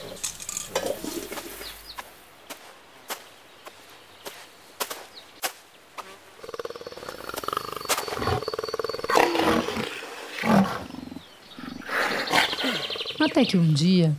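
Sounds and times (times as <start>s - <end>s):
enormous lion roaring and growling: 6.4s - 12.8s
speech: 13.4s - 14.1s.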